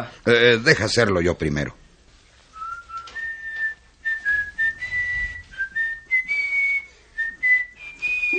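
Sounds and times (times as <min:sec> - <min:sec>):
speech: 0:00.0 - 0:01.8
person whistling a gentle sweet melody: 0:02.6 - 0:08.3.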